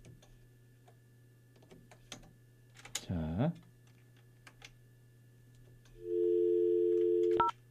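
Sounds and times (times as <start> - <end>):
speech: 3.1 - 3.7
steady telephone dial tone: 6.0 - 7.5
telephone keypad dialing beeps: 6.6 - 7.5.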